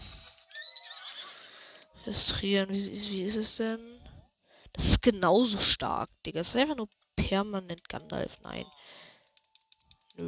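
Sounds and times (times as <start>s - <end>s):
horse neighing: 0.5s - 1.5s
speech: 2.0s - 4.0s, 5.0s - 9.0s.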